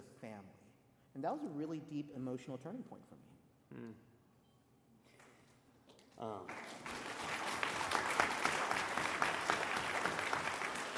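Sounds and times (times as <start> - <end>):
speech: 1.2 - 4.1, 6.2 - 6.8
room full of people clapping: 6.5 - 10.9.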